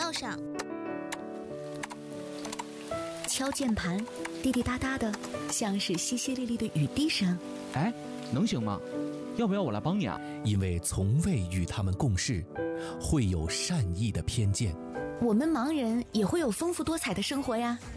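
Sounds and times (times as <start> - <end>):
keyboard typing: 0.0 - 1.2, 1.8 - 6.1
speech: 0.2 - 0.8, 3.3 - 17.9.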